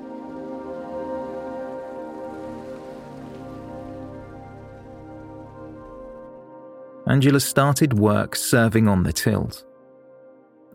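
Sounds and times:
heavy rain: 0.0s - 6.2s
speech: 7.1s - 9.7s.

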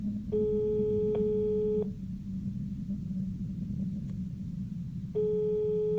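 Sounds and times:
low rumble: 0.0s - 5.9s
telephone ringback tone of a dialled call waiting for an answer: 0.3s - 1.9s, 5.2s - 5.9s.

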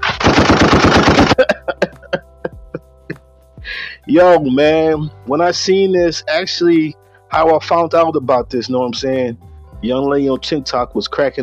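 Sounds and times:
loud rapid burst of automatic gunfire in a gunshot salute: 0.0s - 1.4s
laughter: 1.2s - 2.8s
speech: 4.1s - 11.4s.

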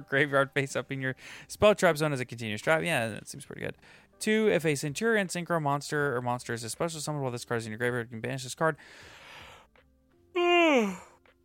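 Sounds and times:
speech: 0.0s - 9.2s, 10.7s - 11.1s
voiced yawn: 10.4s - 11.2s.

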